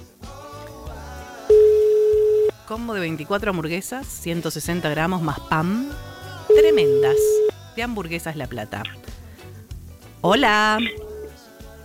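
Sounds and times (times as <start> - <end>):
telephone line tone while dialing a call from a mobile phone: 1.5 - 2.5, 6.5 - 7.5
speech: 2.7 - 9.1, 10.2 - 11.0.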